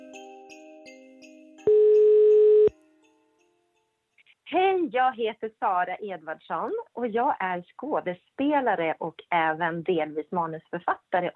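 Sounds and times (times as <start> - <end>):
telephone dial tone while calling: 1.7 - 2.7
speech: 4.5 - 11.3.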